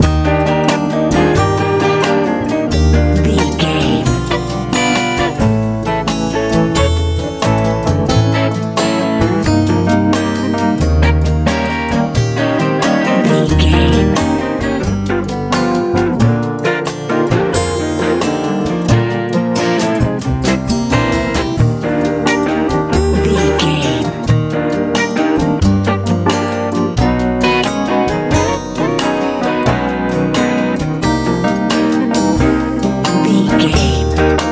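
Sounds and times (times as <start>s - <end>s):
bright light pop music: 0.0s - 34.4s.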